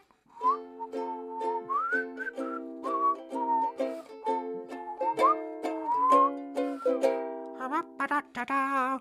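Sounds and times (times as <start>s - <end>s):
clear melodic whistled tune: 0.3s - 7.4s
steady strummed ukulele chords: 0.4s - 8.3s.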